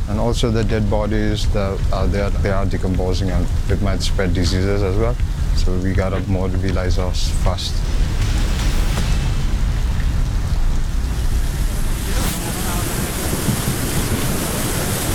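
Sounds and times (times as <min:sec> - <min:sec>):
steady dense heavy rain in the open: 0:00.0 - 0:15.1
speech: 0:00.1 - 0:08.1.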